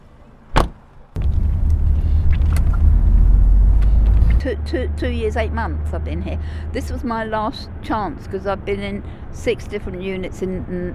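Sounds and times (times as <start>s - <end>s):
car door thud: 0.5s - 3.0s
car engine starting and rumbling: 1.1s - 10.2s
speech: 4.4s - 10.9s.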